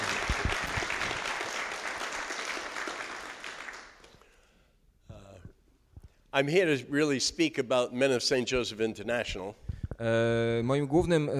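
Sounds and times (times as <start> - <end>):
crowd applauding: 0.0 - 4.2
speech: 6.3 - 11.3.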